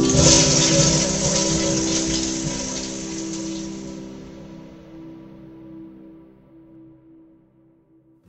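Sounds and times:
toilet flushing: 0:00.0 - 0:04.7.

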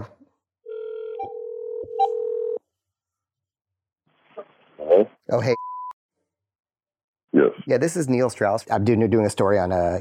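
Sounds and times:
steady telephone tone: 0:00.7 - 0:02.6
speech: 0:05.3 - 0:05.6, 0:07.4 - 0:09.9.

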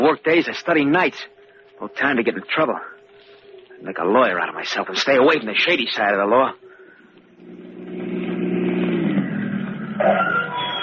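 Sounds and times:
speech: 0:00.0 - 0:02.9, 0:03.8 - 0:06.6
car engine revving: 0:07.1 - 0:10.8.

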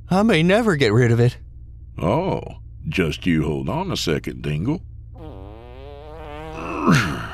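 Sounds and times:
speech: 0:00.1 - 0:01.4, 0:02.0 - 0:04.9, 0:06.8 - 0:07.2
drawn-out buzzy fart: 0:05.2 - 0:07.3.

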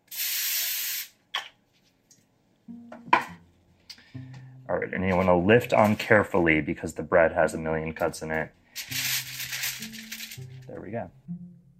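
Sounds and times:
cooking spray from an aerosol can sprayed onto aluminum foil: 0:00.1 - 0:01.2
speech: 0:04.7 - 0:08.6, 0:10.8 - 0:11.5.

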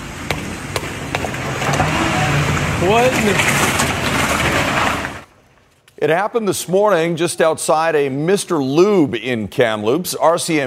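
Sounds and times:
stolen car engine revving and accelerating: 0:00.0 - 0:05.3
sharp knocks: 0:00.3 - 0:02.0
speech: 0:02.8 - 0:03.7, 0:06.0 - 0:10.6.

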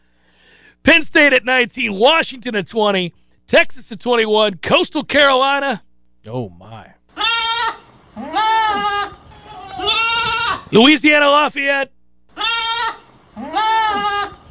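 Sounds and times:
speech: 0:00.9 - 0:06.9, 0:10.7 - 0:12.0
goats bleating: 0:07.2 - 0:10.8, 0:12.4 - 0:14.5.

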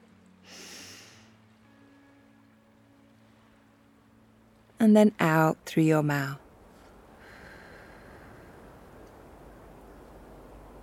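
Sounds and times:
slow deep inhale through the nose: 0:00.4 - 0:01.4, 0:07.2 - 0:08.8
speech: 0:04.8 - 0:06.4.

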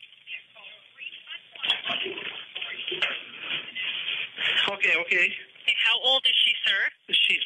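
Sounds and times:
voices: 0:00.0 - 0:07.4
water draining and sloshing from a bathtub: 0:01.6 - 0:03.2
speech: 0:04.8 - 0:07.4.

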